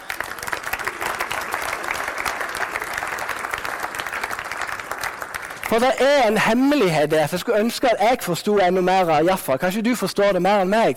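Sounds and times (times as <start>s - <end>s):
crowd applauding: 0.0s - 6.6s
speech: 5.7s - 10.9s.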